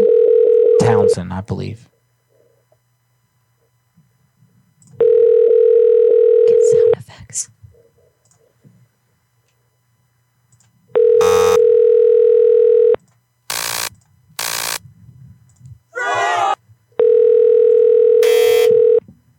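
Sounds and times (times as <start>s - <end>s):
unanswered phone call ringback tones: 0.0s - 1.0s, 5.0s - 6.9s, 11.0s - 13.0s, 17.0s - 19.0s
speech: 0.9s - 1.9s, 6.7s - 7.6s.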